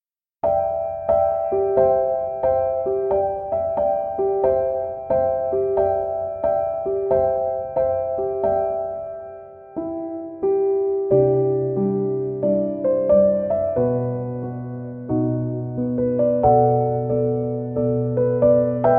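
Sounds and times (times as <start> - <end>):
piano instrumental: 0.4 - 18.9.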